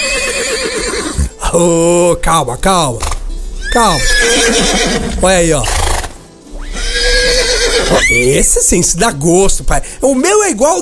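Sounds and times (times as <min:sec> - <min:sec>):
horse neighing and whinnying: 0:00.0 - 0:01.4, 0:03.6 - 0:08.5
horse snorting: 0:00.0 - 0:01.4, 0:03.9 - 0:08.1
speech: 0:01.5 - 0:03.1, 0:03.7 - 0:05.8, 0:07.9 - 0:10.7.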